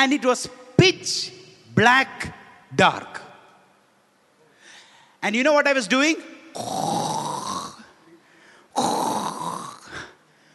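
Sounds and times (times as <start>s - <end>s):
speech: 0.0s - 3.2s, 5.2s - 7.0s
person imitating loud snoring with their voice: 6.6s - 7.9s, 8.8s - 10.1s.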